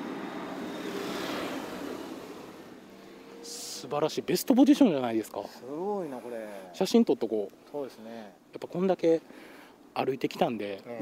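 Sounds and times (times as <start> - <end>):
car passing by on a road: 0.0 - 4.3
speech: 3.8 - 11.0.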